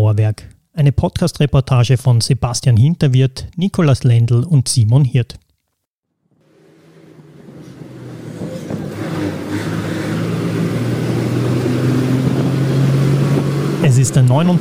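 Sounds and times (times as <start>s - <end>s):
speech: 0.2s - 5.4s, 14.0s - 14.5s
engine rumble from inside a moving bus travelling to Graz: 6.5s - 14.5s.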